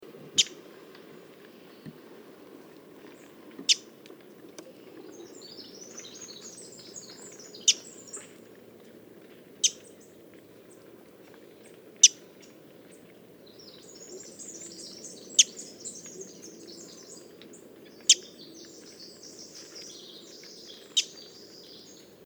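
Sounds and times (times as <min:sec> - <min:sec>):
Wilson's warbler Cardellina pusilla singing: 0:04.6 - 0:08.4, 0:13.4 - 0:22.2.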